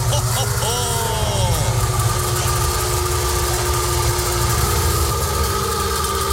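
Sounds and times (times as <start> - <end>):
laughter: 0.0 - 4.4
Wartburg Melkus RS 1000 East German sports car engine running: 0.0 - 6.3.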